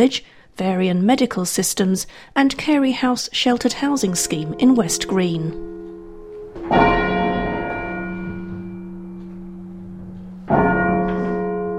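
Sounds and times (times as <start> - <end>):
speech: 0.0 - 5.8
deep tenor bell of St John's Church in Redhill tolling: 3.9 - 11.7.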